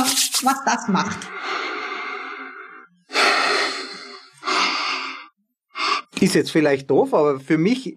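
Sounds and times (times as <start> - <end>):
speech: 0.4 - 1.6, 6.2 - 7.9
slow deep inhaling of peppermint oil through the hands: 1.3 - 6.2.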